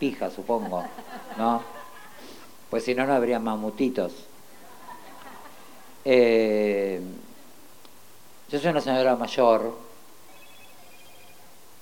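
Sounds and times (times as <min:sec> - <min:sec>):
speech: 0:00.0 - 0:04.3, 0:06.0 - 0:07.2, 0:08.5 - 0:09.9
hiss: 0:00.0 - 0:11.7
laughter: 0:00.5 - 0:02.4, 0:04.5 - 0:06.0
phone ringing with thin electronic tones: 0:10.3 - 0:11.6.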